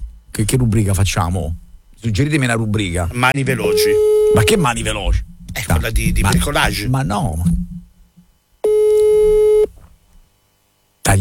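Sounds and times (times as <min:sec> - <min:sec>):
speech: 0:00.4 - 0:07.7
telephone busy signal after dialling a call: 0:03.6 - 0:04.6, 0:08.6 - 0:09.7.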